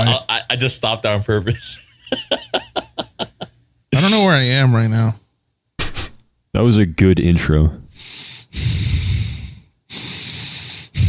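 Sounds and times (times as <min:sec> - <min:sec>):
speech: 0:00.0 - 0:02.5, 0:04.0 - 0:05.2, 0:06.6 - 0:07.8
laughter: 0:01.6 - 0:03.5
heavy breathing into microphone: 0:07.9 - 0:11.0.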